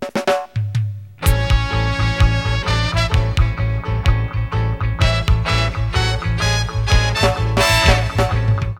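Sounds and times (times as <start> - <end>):
synth drum: 1.2 - 4.4, 5.0 - 8.7.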